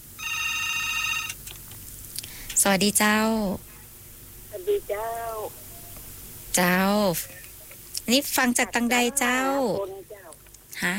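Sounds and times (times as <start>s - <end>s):
telephone ringing with an incoming call: 0.0s - 1.4s
low hum: 0.0s - 10.9s
speech: 2.6s - 3.7s, 4.6s - 5.6s, 6.6s - 7.4s, 8.1s - 10.0s, 10.8s - 10.9s.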